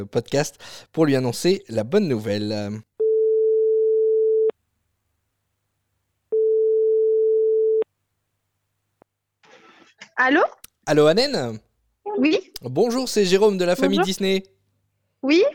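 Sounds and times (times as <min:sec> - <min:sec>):
speech: 0:00.0 - 0:02.9, 0:10.2 - 0:14.6, 0:15.2 - 0:15.5
telephone ringback tone while dialing a call: 0:03.0 - 0:04.5, 0:06.4 - 0:07.8.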